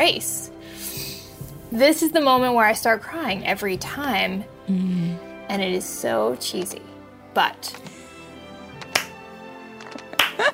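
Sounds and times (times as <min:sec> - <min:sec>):
speech: 0:00.0 - 0:00.4, 0:01.7 - 0:07.9
slow hand claps: 0:08.7 - 0:09.2, 0:09.8 - 0:10.5.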